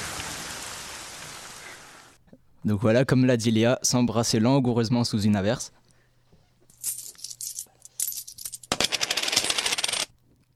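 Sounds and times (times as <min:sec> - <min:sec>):
speech: 0:02.6 - 0:05.8
coins tossed onto a counter scattering and rattling: 0:06.7 - 0:10.1.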